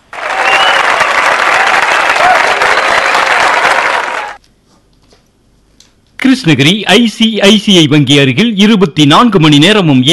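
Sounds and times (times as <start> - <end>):
audience applause: 0.0 - 4.4
speech: 6.3 - 10.1.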